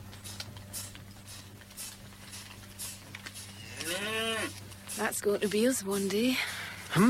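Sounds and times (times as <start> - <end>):
cattle herd shuffling and clattering out of a holding yard: 0.0 - 6.4
steady low mechanical hum: 0.0 - 7.0
cow giving a loud drawn-out moo: 3.6 - 4.6
speech: 5.1 - 7.0.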